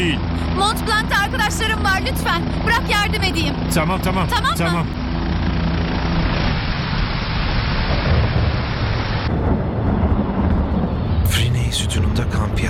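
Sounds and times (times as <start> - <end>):
speech: 0.1 - 5.0, 11.8 - 12.6
deep low rumbling of thunder: 6.2 - 12.6
heavy rain during a cold storm on Mont Blanc: 6.3 - 12.6.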